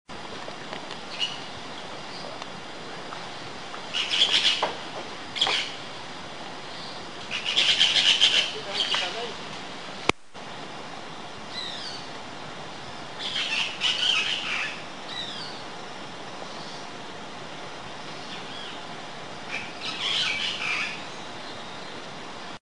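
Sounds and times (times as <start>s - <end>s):
short-tailed parrot calling: 3.9s - 4.7s, 7.3s - 9.3s, 13.2s - 15.6s, 19.5s - 21.0s.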